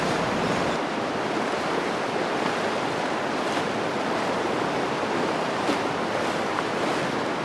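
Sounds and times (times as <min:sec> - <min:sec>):
tidal bore wave surging up a river estuary: 0:00.0 - 0:07.4.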